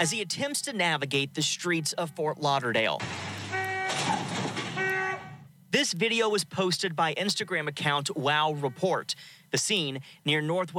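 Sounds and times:
speech: 0.0 - 3.4, 5.7 - 10.7
loud burst of rough crashing noise: 3.0 - 5.4
car alarm blaring a steady electronic tone after a crash: 3.0 - 5.5.

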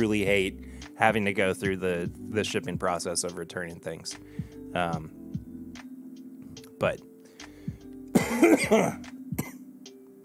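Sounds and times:
speech: 0.0 - 5.2, 6.8 - 7.1, 8.4 - 9.2
person with a cold coughing: 8.2 - 9.6.

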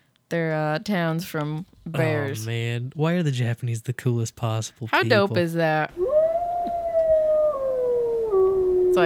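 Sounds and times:
speech: 0.3 - 6.0
wolf howl played through a loudspeaker: 6.0 - 9.0.

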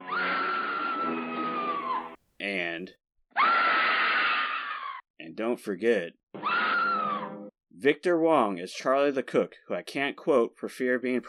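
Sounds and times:
woman screaming in a film clip: 0.0 - 2.2, 3.3 - 5.0, 6.4 - 7.4
speech: 2.4 - 3.7, 5.4 - 6.4, 7.8 - 11.2.

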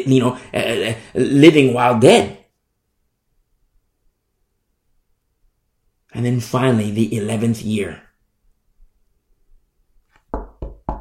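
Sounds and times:
speech: 0.0 - 2.4, 6.2 - 8.0
knocking on a door: 10.3 - 10.9.

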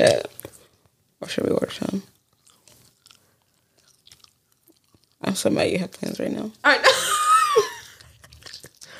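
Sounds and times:
speech: 0.0 - 0.4, 1.2 - 2.1, 5.3 - 7.7
wet open-mouthed chewing into a microphone: 1.8 - 6.1, 7.8 - 8.9
sharp crunchy bite: 2.2 - 5.2.

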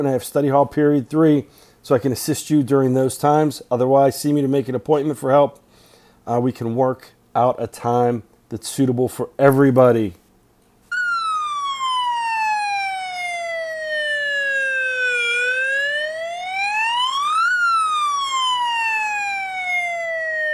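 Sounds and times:
speech: 0.0 - 5.6, 6.3 - 10.2
loud siren wailing: 10.9 - 20.5.

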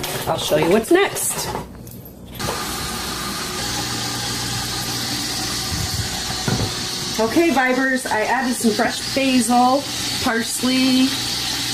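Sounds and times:
speech: 0.3 - 1.7, 7.2 - 11.3
chopped onion and prosciutto sizzling in a pan: 2.4 - 11.7.

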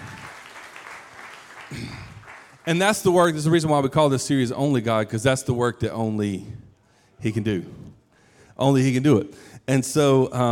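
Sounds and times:
audience applauding: 0.0 - 2.8
speech: 1.7 - 6.6, 7.2 - 7.9, 8.6 - 10.5.

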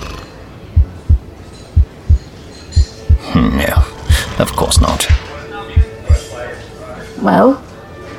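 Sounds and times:
low double heartbeat thumping: 0.8 - 5.2, 5.8 - 6.2
speech: 4.4 - 5.3, 7.2 - 7.6.

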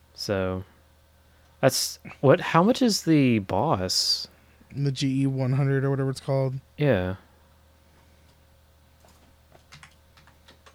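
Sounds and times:
low steady hum: 0.0 - 10.7
speech: 0.2 - 0.7, 1.6 - 7.2
typing on a computer keyboard: 9.0 - 10.7.

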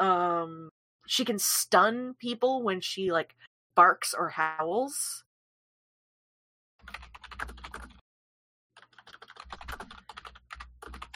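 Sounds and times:
speech: 1.1 - 5.2
typing on a computer keyboard: 6.8 - 8.0, 8.8 - 11.1.

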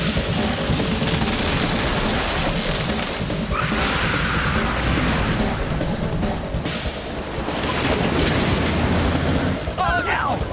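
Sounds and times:
heavy hurricane rain pouring: 0.1 - 10.4.

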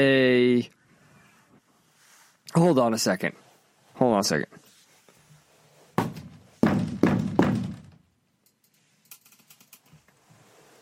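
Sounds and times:
speech: 2.5 - 3.4, 4.0 - 4.6
loud hollow banging on a closet door: 6.0 - 8.0.

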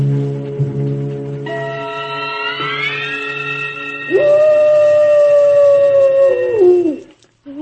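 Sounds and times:
long eerie wolf howl: 0.2 - 7.1.

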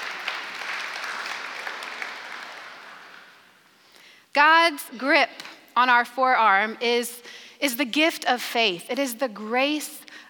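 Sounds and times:
audience applause: 0.0 - 3.4
speech: 4.4 - 10.2.

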